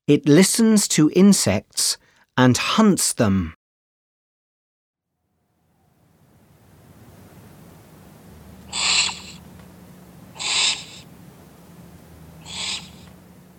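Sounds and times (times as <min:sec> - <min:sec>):
speech: 0:00.1 - 0:03.6
steady low rumble: 0:05.4 - 0:13.5
owl hooting: 0:08.5 - 0:11.3, 0:12.3 - 0:13.2.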